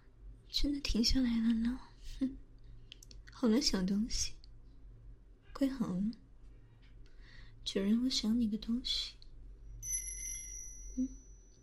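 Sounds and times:
speech: 0.5s - 2.4s, 3.4s - 4.4s, 5.6s - 6.2s, 7.6s - 9.2s, 11.0s - 11.2s
small bell on a pink collar jingling: 9.8s - 11.6s.

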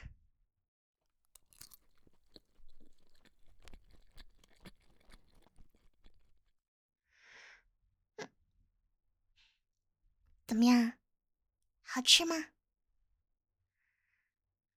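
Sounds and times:
person chewing a piece of cake: 1.3s - 6.5s
speech: 10.5s - 10.9s, 11.9s - 12.5s.

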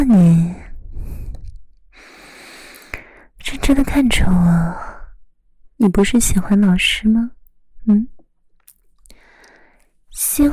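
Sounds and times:
speech: 0.0s - 0.6s, 3.7s - 4.9s, 5.8s - 8.2s, 10.2s - 10.5s
nervous breathing: 0.5s - 3.3s, 9.1s - 9.9s.

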